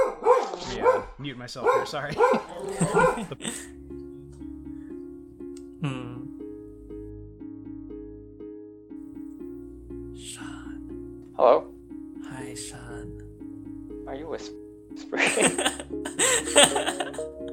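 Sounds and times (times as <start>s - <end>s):
dog barking: 0.0s - 3.4s
speech: 1.2s - 3.8s, 5.8s - 6.2s
laughter: 1.6s - 3.7s, 15.0s - 17.5s.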